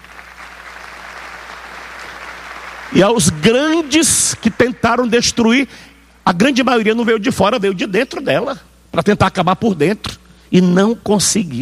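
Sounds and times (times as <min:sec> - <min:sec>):
audience applause in a church: 0:00.0 - 0:04.8
speech: 0:02.9 - 0:11.5.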